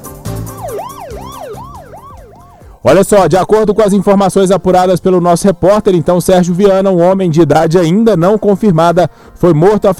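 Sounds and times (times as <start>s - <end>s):
wailing siren sound effect: 0.4s - 3.9s
speech: 2.8s - 9.9s.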